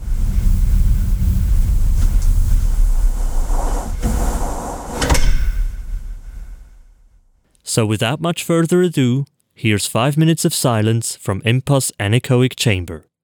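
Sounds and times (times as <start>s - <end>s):
huge heavy anechoic chamber door rumbling and sliding shut: 0.0s - 7.3s
sharp metallic clunk of a heavy door: 2.0s - 7.4s
speech: 7.7s - 13.1s.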